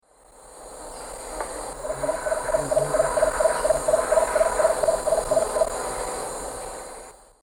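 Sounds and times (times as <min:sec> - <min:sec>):
Eubucco richardsoni song: 0:01.9 - 0:06.7.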